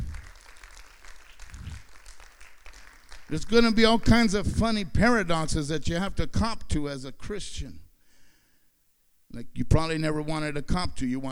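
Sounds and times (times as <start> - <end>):
audience applause: 0.0 - 4.2
speech: 3.3 - 7.8, 9.3 - 11.2.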